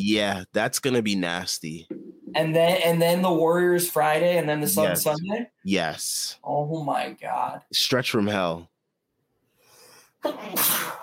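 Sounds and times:
speech: 0.0s - 8.7s, 10.2s - 11.0s
person sneezing loudly: 10.2s - 11.0s.

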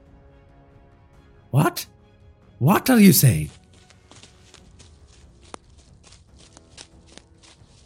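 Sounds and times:
speech: 1.5s - 2.0s, 2.6s - 3.6s
footsteps of someone running away from a compound: 4.1s - 7.8s.

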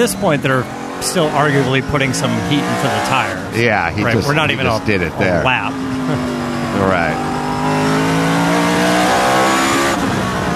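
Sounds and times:
laughter: 0.0s - 7.2s
speech: 0.0s - 7.8s
race car engine downshifting into second gear: 0.0s - 10.5s.

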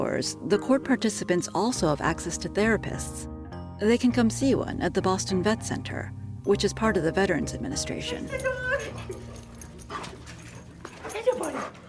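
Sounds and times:
speech: 0.0s - 9.2s
dog whimpering and yipping: 8.1s - 11.8s.

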